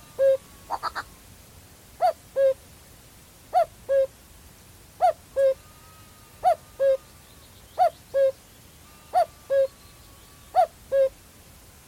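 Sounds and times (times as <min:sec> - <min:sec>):
male common cuckoo two-note call on a lowland heath in Staffordshire: 0:00.0 - 0:01.1, 0:02.0 - 0:02.6, 0:03.5 - 0:04.1, 0:05.0 - 0:05.7, 0:06.4 - 0:07.2, 0:07.8 - 0:08.4, 0:09.0 - 0:11.2.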